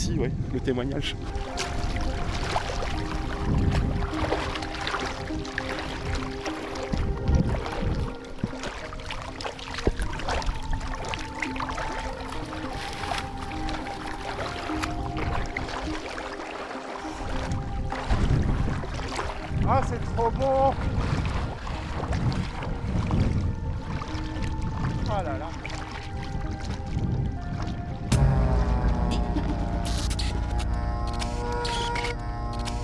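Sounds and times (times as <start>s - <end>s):
speech: 0.1s - 1.7s
river water sloshing and splashing as someone swims: 0.9s - 32.8s
steady outdoor ambience: 28.1s - 32.8s.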